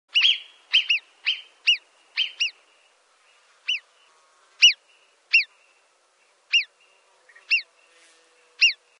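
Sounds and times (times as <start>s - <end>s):
marmot calling: 0.1s - 2.8s, 3.6s - 3.9s, 4.6s - 5.7s, 6.5s - 7.7s, 8.6s - 8.8s.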